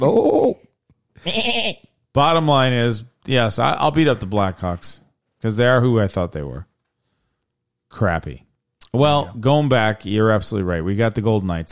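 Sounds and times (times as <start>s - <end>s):
speech: 0.0s - 6.7s, 7.9s - 11.7s
person imitating a goat bleat: 1.2s - 1.9s.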